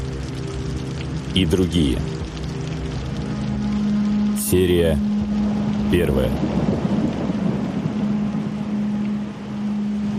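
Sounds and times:
heavy rain in a thunderstorm: 0.0 - 10.1
speech: 1.3 - 2.2, 4.5 - 5.1, 5.9 - 6.7
low thunder rumble: 2.0 - 10.1.

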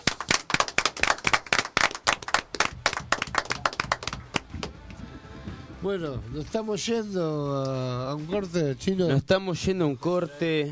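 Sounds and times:
audience applause for a guest: 0.0 - 4.5
speech: 5.8 - 10.7.

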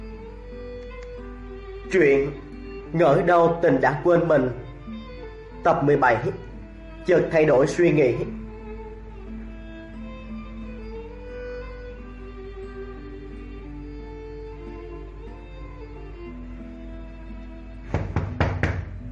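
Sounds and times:
music: 0.0 - 19.1
speech: 1.9 - 4.6, 5.6 - 8.4
knocking on an office door: 17.9 - 19.0.

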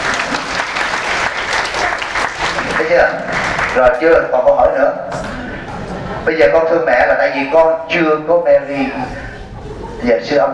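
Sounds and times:
audience applause at a Buddhist talk: 0.0 - 4.0
speech: 2.9 - 5.4, 6.2 - 9.2, 10.0 - 10.5.

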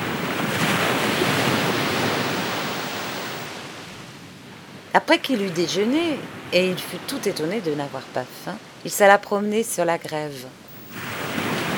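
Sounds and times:
surf of a rising tide washing over a pebble beach: 0.0 - 3.9, 10.9 - 11.7
speech: 5.0 - 11.0.

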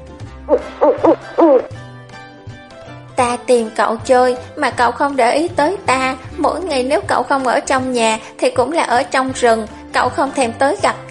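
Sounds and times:
large bird cooing plaintively: 0.5 - 1.7
speech: 0.5 - 1.8, 3.5 - 11.0.

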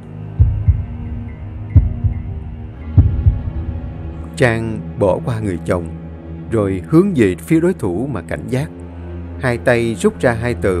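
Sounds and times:
pounding heartbeat sound effect: 0.4 - 4.2
speech: 4.4 - 8.8, 9.4 - 10.7.

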